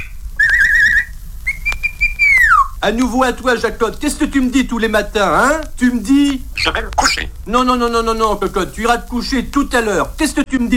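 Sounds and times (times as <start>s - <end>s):
person whistling to call a neighbour's dog: 0.0s - 2.8s
speech: 2.8s - 10.7s.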